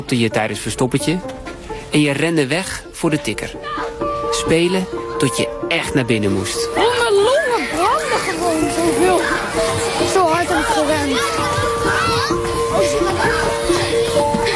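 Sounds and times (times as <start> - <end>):
speech: 0.0 - 6.8
crowd of children playing outdoors, shouting and calling: 3.5 - 5.4, 6.6 - 14.5
faint splashing: 6.2 - 14.5.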